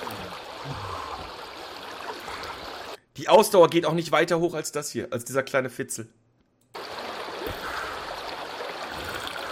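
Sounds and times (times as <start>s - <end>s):
flowing water babbling and trickling: 0.0s - 3.0s, 6.8s - 9.5s
speech: 3.2s - 6.2s.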